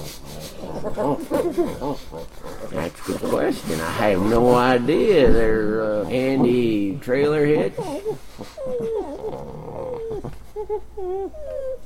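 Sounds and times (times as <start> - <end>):
dogs yelping: 0.0 - 3.6, 6.1 - 11.8
dogs howling and whining: 0.0 - 6.6, 7.2 - 11.8
speech: 0.8 - 8.8, 10.7 - 11.8.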